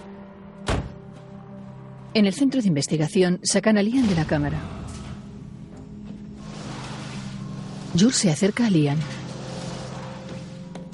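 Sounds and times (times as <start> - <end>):
car door shutting in the street: 0.6 - 1.0
speech: 2.1 - 4.9, 8.0 - 9.2.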